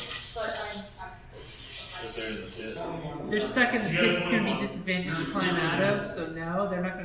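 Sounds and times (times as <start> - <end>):
voice imitating hissing snakes in a pit: 0.0 - 2.8
speech: 2.6 - 7.0.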